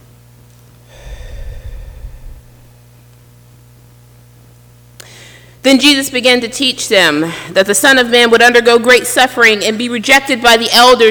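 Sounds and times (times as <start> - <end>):
deep breath in: 0.9 - 3.0
speech: 5.6 - 11.0.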